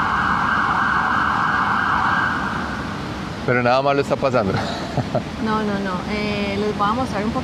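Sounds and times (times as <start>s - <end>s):
ambulance siren wailing in city street: 0.0s - 3.0s
loud city street traffic: 0.0s - 7.4s
speech: 3.5s - 7.4s
laughter: 4.4s - 5.3s.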